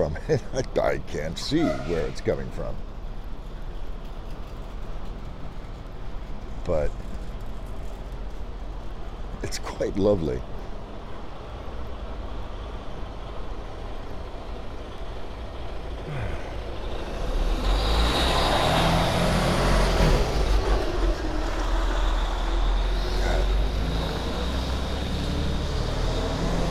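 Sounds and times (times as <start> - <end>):
speech: 0.0 - 2.9, 6.7 - 7.0, 9.4 - 10.5
semi-truck engine rumbling on an urban street: 0.0 - 26.7
faint squeals: 1.4 - 2.4.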